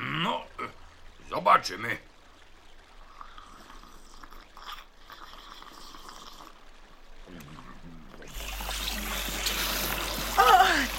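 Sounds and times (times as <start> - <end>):
speech: 0.2 - 0.5, 1.3 - 2.1
water sprayed from an elephant's trunk as a shower: 8.2 - 10.9.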